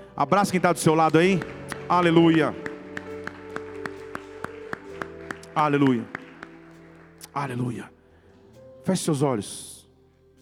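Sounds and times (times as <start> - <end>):
sustained keyboard chords: 0.0 - 9.1
speech: 0.2 - 2.6, 5.6 - 6.2, 7.4 - 8.0, 8.8 - 9.8
church audience clapping in praise in a steady beat: 0.5 - 7.7.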